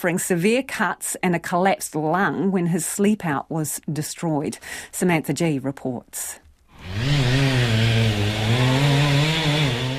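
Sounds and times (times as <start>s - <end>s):
speech: 0.0s - 7.5s
chainsaw cutting debris: 6.7s - 9.9s.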